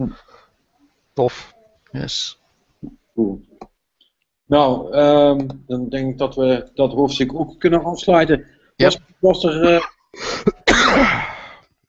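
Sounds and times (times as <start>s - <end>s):
speech: 0.0s - 0.3s, 1.2s - 3.5s, 4.5s - 11.3s
sneeze or cough after inhaling ammonia: 10.3s - 11.6s.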